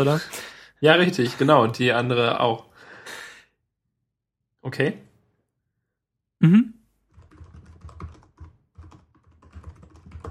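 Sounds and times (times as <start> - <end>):
speech: 0.0 - 3.2, 4.6 - 5.1, 6.4 - 6.8
faint rapid typing of a short message: 7.1 - 10.3.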